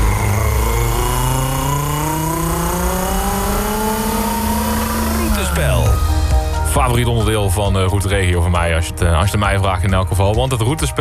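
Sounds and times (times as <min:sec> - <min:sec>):
car engine revving and accelerating away: 0:00.0 - 0:07.8
speech: 0:06.9 - 0:11.0.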